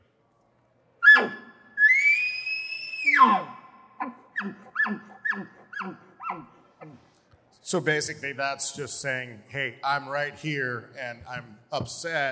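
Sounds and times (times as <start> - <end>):
imitated elk call with bark, scream and chuckles: 1.0 - 6.6
speech: 7.7 - 12.3.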